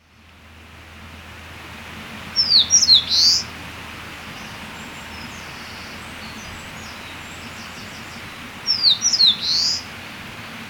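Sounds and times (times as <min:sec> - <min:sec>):
Eastern crowned warbler song: 0:02.3 - 0:10.6.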